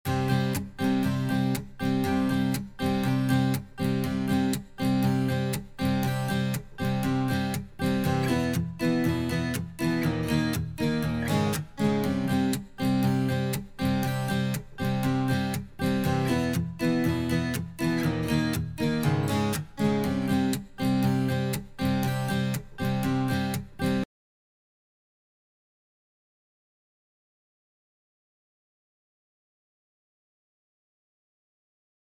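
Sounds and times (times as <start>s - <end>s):
acoustic guitar strumming: 0.0s - 24.1s.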